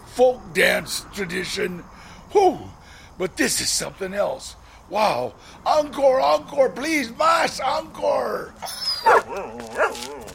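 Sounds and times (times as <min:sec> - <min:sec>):
speech: 0:00.2 - 0:10.2
hairless dog whiny wavering yelps and whimpers: 0:08.6 - 0:10.3
hairless dog barking: 0:09.0 - 0:10.1.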